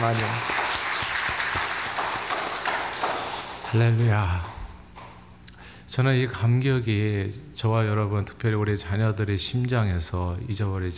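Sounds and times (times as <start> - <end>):
speech: 0.0 - 0.6, 3.7 - 4.6, 5.9 - 10.9
large crowd applauding: 0.0 - 5.3.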